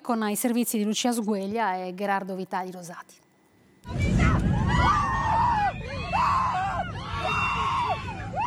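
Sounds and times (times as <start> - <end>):
speech: 0.0 - 3.2
several people screaming aboard an airliner: 3.9 - 8.4.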